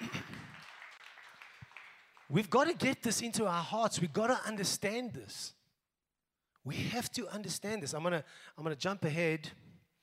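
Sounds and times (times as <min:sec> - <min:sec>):
audience applause: 0:00.0 - 0:02.7
speech: 0:02.3 - 0:05.6, 0:06.6 - 0:09.6.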